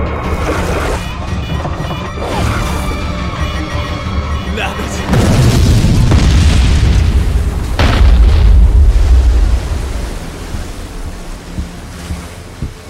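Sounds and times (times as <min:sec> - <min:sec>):
churning water: 0:00.1 - 0:12.8
underwater boom from a torpedo striking a submarine: 0:05.1 - 0:10.6.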